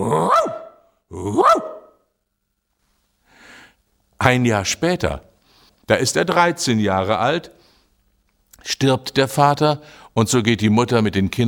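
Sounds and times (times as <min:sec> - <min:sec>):
dog barking loudly: 0:00.2 - 0:00.8, 0:01.4 - 0:02.0
speech: 0:04.2 - 0:05.3, 0:05.9 - 0:07.6, 0:08.6 - 0:11.4.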